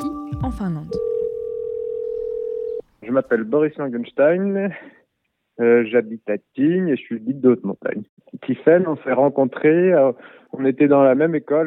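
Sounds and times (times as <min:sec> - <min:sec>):
speech: 0:00.6 - 0:01.1, 0:03.1 - 0:05.0, 0:05.6 - 0:11.6
telephone ringback tone on an outgoing call to Helsinki Finland: 0:00.9 - 0:02.8.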